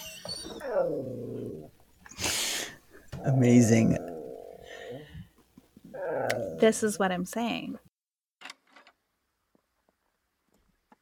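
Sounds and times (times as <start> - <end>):
dog growling: 0.5 - 1.8, 3.1 - 5.1, 5.9 - 6.7
speech: 3.2 - 4.1, 6.6 - 7.9.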